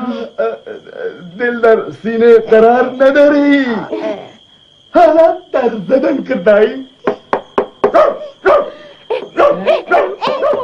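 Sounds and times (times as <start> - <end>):
speech: 1.4 - 4.1, 5.0 - 6.9
dog barking: 7.8 - 10.6.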